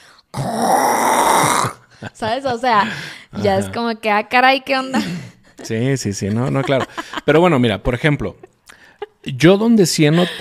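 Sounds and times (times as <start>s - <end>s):
person mimicking a partner snoring: 0.3s - 1.8s
speech: 2.2s - 8.5s, 9.2s - 10.3s
laughter: 5.0s - 7.6s, 10.0s - 10.3s.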